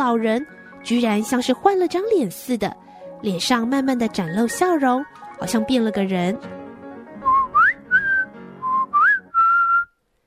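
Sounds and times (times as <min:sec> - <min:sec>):
speech: 0:00.0 - 0:06.6
person whistling a short clear tune: 0:07.2 - 0:10.0.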